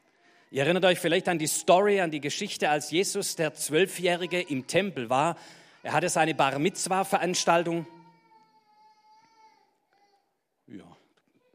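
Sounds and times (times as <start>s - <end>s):
speech: 0.5s - 8.0s, 10.7s - 11.0s
baby crying in the room: 3.1s - 10.4s.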